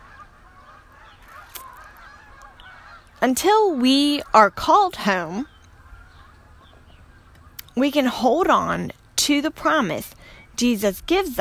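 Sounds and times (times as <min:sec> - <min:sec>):
flock of geese honking while flying overhead: 0:00.0 - 0:09.0
low rumbling outdoor background: 0:00.0 - 0:11.4
speech: 0:03.2 - 0:05.5, 0:07.8 - 0:11.4.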